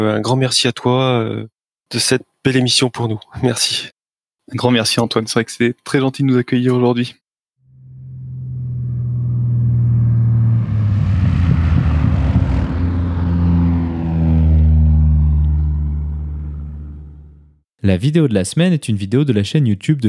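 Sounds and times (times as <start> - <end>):
speech: 0.0 - 7.2, 17.8 - 20.0
rushing roar: 7.7 - 17.5
A320 jet engines droning in a simulated departure: 7.8 - 17.4
steady low hum: 7.8 - 17.5.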